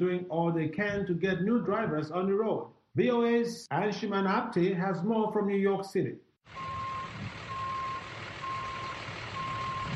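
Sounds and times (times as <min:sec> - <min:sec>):
speech: 0:00.0 - 0:06.7
large truck reversal alarm beeps: 0:06.5 - 0:09.9
low rumble of a large truck's idling diesel engine: 0:06.5 - 0:09.9.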